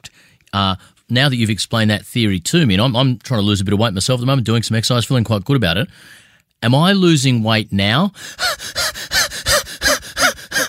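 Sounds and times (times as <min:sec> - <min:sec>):
speech: 0:00.5 - 0:08.8
heavy breathing out: 0:05.9 - 0:06.5, 0:08.2 - 0:10.6.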